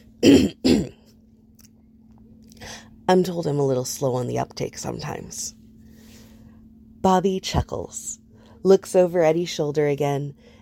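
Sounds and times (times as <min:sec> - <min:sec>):
man clearing his throat: 0:00.2 - 0:01.0
speech: 0:00.2 - 0:01.0, 0:03.1 - 0:05.6, 0:07.0 - 0:10.5.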